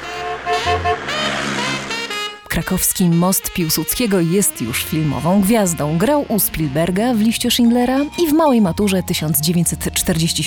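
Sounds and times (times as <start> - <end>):
1970s-era vintage car engine revving on a historical film shoot: 0.0 - 2.4
speech: 2.6 - 10.4.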